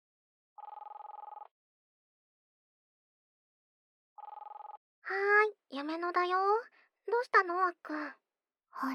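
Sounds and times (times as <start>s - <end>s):
smartphone outgoing-call ringback tone with buzzy warbling rings: 0.6s - 1.5s, 4.2s - 4.8s
speech: 5.1s - 8.2s, 8.8s - 8.9s.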